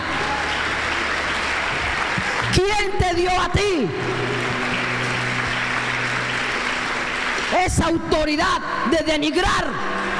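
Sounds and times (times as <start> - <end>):
audience applauding in a large room: 0.0 - 8.1
speech: 2.5 - 4.4, 7.5 - 10.1.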